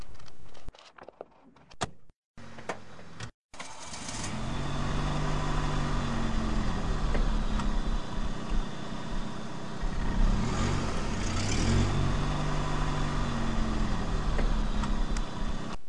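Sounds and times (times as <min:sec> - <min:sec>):
car engine running then stalling: 0:03.6 - 0:15.8.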